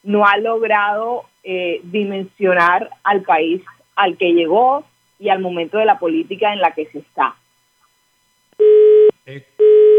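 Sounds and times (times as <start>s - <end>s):
speech: 0.0s - 7.4s, 9.3s - 9.8s
telephone busy tone after a dropped call: 8.6s - 9.9s.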